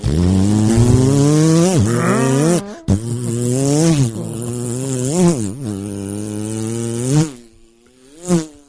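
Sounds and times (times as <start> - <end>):
voice imitating a small motorcycle engine revving: 0.0 - 6.9.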